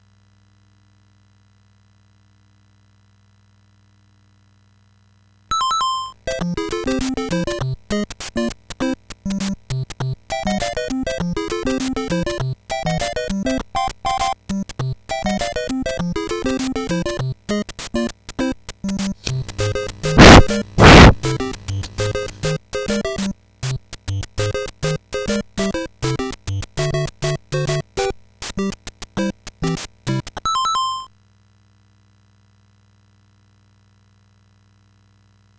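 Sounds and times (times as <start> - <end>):
Famicom buzz: 5.5 - 31.1.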